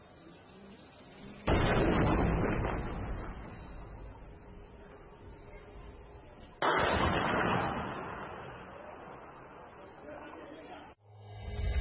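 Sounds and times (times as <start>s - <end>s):
loud explosion in played war footage: 1.4s - 10.2s.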